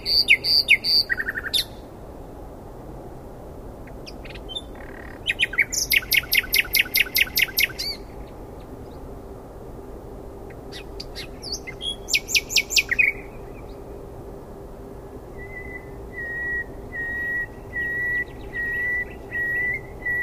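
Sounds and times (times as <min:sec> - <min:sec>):
common nightingale singing: 0:00.0 - 0:01.8, 0:03.9 - 0:09.0, 0:10.5 - 0:13.9, 0:15.3 - 0:20.2.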